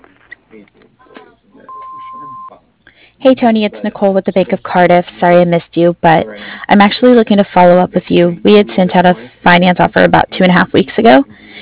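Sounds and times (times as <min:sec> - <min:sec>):
recorded voice speaking: 0:00.5 - 0:11.6
answering machine beep: 0:01.7 - 0:02.6
speech: 0:03.2 - 0:11.4.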